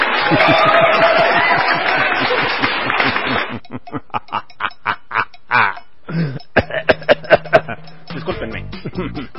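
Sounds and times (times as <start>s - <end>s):
laughter: 0.0s - 5.8s, 6.6s - 7.8s, 8.8s - 9.3s
speech: 0.3s - 0.8s
person coughing after drinking water: 5.6s - 7.4s.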